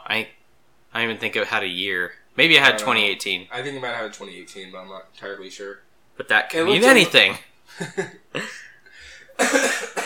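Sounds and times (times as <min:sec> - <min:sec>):
speech: 0:00.1 - 0:08.6, 0:09.4 - 0:10.0
harsh coughing: 0:08.4 - 0:10.0.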